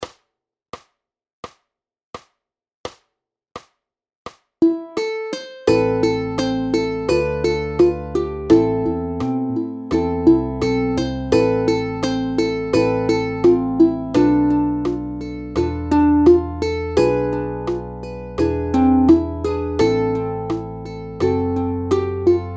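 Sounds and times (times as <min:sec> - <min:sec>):
ukulele group playing: 0:04.6 - 0:22.5.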